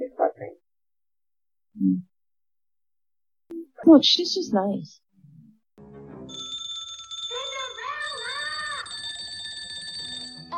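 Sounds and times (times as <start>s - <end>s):
speech: 3.9s - 5.0s
several service bells ringing in a film scene: 6.3s - 10.5s.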